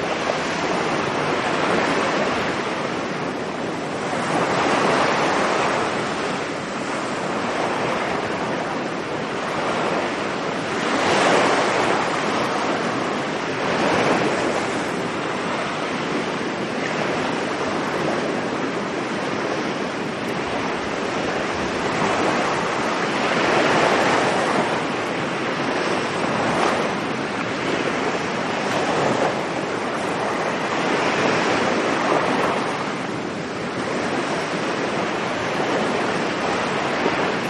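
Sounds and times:
ocean waves washing onto a beach: 0:00.0 - 0:37.4
wind: 0:00.0 - 0:37.4.

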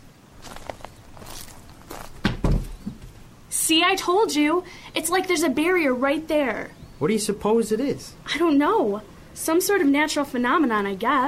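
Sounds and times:
footsteps walking: 0:00.3 - 0:03.3
heavy thuds: 0:00.4 - 0:03.3
speech: 0:03.7 - 0:11.2.

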